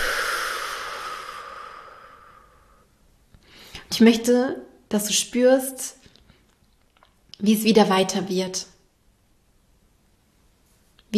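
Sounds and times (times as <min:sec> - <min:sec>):
long breath out through the mouth in a guided relaxation exercise: 0:00.0 - 0:03.8
speech: 0:04.0 - 0:06.0, 0:07.4 - 0:08.7.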